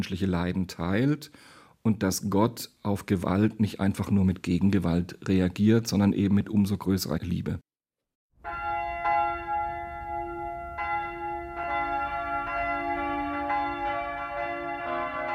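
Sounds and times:
speech: 0:00.0 - 0:07.7
large church bells ringing in a full peal: 0:08.4 - 0:15.3.

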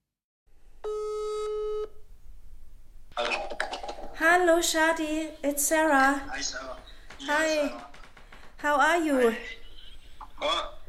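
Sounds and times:
steady electronic telephone tone: 0:00.8 - 0:02.0
speech: 0:04.4 - 0:07.9, 0:08.6 - 0:09.6, 0:10.4 - 0:10.7.

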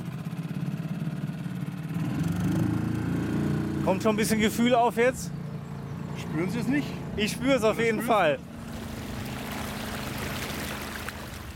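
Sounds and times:
boat engine humming low: 0:00.0 - 0:11.5
speech: 0:03.9 - 0:05.4, 0:06.2 - 0:08.4
water rushing past a boat on a river: 0:06.3 - 0:11.5.

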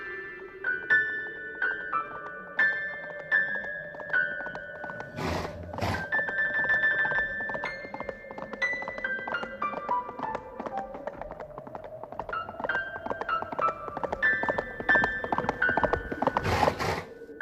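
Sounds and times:
hooves clip-clopping at a walking rhythm: 0:00.7 - 0:17.1
groaning animal-like snort: 0:05.0 - 0:06.2, 0:16.4 - 0:17.1.

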